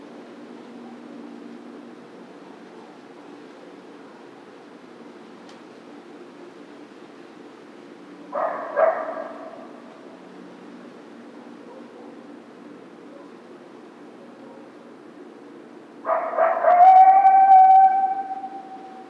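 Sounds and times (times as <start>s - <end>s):
coyote howling: 16.0s - 19.0s.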